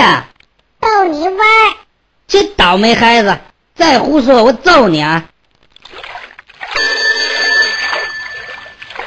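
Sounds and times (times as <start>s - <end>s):
speech: 1.0s - 5.3s
telephone ringing with a buzzing bell tone: 6.7s - 9.0s.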